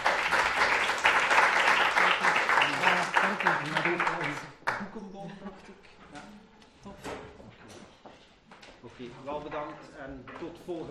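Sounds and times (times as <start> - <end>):
audience applauding a speaker after a talk: 0.0 - 4.8
speech: 3.4 - 4.0, 9.2 - 10.9.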